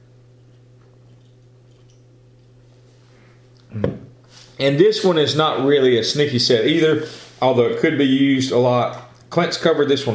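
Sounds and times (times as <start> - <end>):
steady low hum: 0.0 - 10.1
person gulping a swig of water: 0.4 - 2.8
speech: 4.6 - 10.1.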